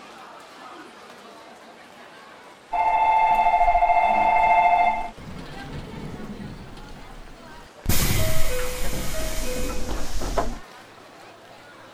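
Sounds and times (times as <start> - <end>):
quieter hum: 2.8 - 7.8
train running on rails with a stepped electric whine: 2.8 - 10.6.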